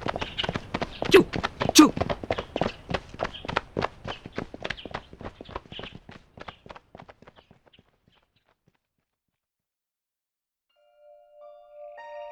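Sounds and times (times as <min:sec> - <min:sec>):
horses galloping on grassland: 0:00.0 - 0:08.8.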